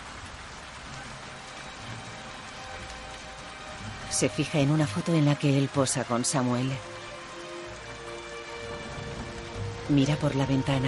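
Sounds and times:
rain: 0.0 - 10.8
speech: 4.1 - 6.9, 9.9 - 10.8.

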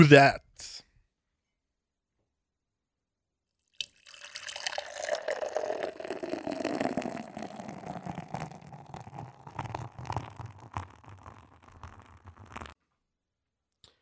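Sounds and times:
speech: 0.0 - 0.7
hazy beer pouring into a glass: 3.8 - 12.8.

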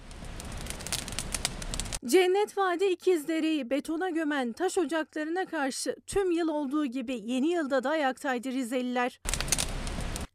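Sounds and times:
outdoor New Year fire crackling and popping: 0.0 - 2.0, 9.3 - 10.3
speech: 2.0 - 9.4.

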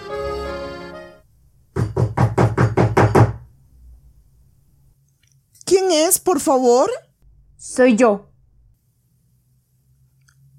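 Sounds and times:
held musical tone: 0.0 - 1.3
sharp knocks on a door: 1.7 - 3.5
speech: 6.1 - 8.3.

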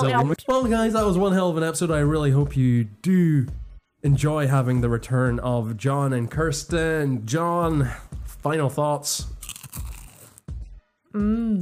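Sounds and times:
speech: 0.0 - 9.8, 11.1 - 11.6
person biting into crisp food: 9.3 - 10.5
person humming: 11.1 - 11.6.

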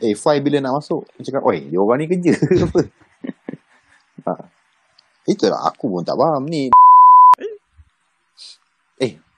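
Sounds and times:
speech: 0.0 - 3.4, 4.2 - 4.6, 5.3 - 6.8, 8.4 - 9.2
laughter: 2.2 - 3.7
censor bleep tone over a word: 6.7 - 7.4.

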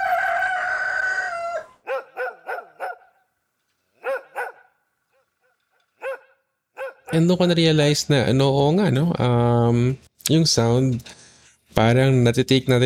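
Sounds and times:
rooster crowing: 0.0 - 3.0
dog barking: 1.7 - 3.3, 4.0 - 7.2
speech: 7.1 - 11.2, 11.8 - 12.8.

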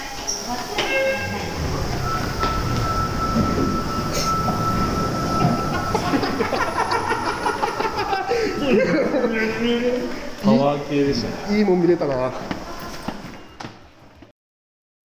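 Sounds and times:
Sapporo Municipal Subway Namboku Line car in motion, recorded inside the train in Hokkaido: 0.6 - 8.2
sustained metallic whine of subway train: 0.8 - 9.2
laughter: 5.4 - 10.0, 12.4 - 13.2
speech: 8.7 - 12.5.

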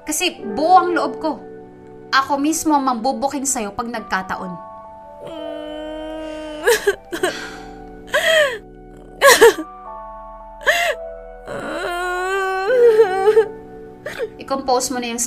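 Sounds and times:
steady tonal background: 0.0 - 15.2
speech: 0.1 - 1.5, 2.1 - 5.4, 6.7 - 7.6, 9.4 - 9.7, 14.5 - 15.2
woman crying and sobbing: 5.2 - 9.8, 10.6 - 14.4.

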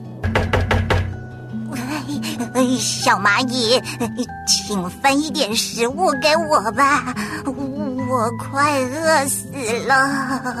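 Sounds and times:
knocking on a door: 0.2 - 1.2
speech: 2.4 - 10.5.

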